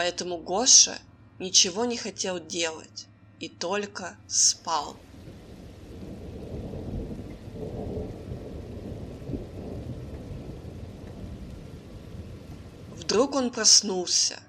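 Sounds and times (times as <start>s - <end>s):
speech: 0.0s - 5.1s, 13.2s - 14.4s
steady rain on a cold autumn evening: 4.8s - 14.2s
deep thunder rumbling: 5.0s - 13.7s.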